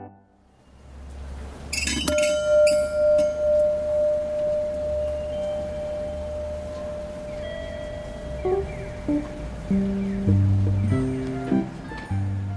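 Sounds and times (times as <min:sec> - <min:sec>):
steady outdoor hum: 0:00.5 - 0:12.5
railway station bell ringing: 0:01.7 - 0:09.8.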